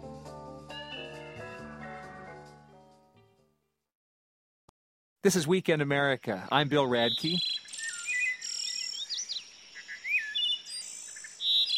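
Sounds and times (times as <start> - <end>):
speech: 5.2 - 7.5
wood thrush singing clear flute-like whistled phrases: 7.0 - 11.7.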